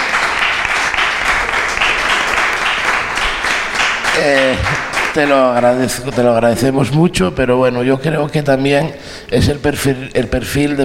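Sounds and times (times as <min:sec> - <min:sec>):
audience applause at a rock festival in Navia: 0:00.0 - 0:06.3
speech: 0:04.2 - 0:10.8.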